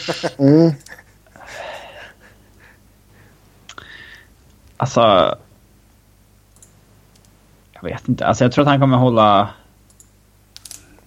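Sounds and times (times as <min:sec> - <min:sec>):
speech: 0:00.1 - 0:01.0, 0:04.8 - 0:05.4, 0:07.8 - 0:09.6
heavy raspy panting breaths: 0:00.9 - 0:04.3.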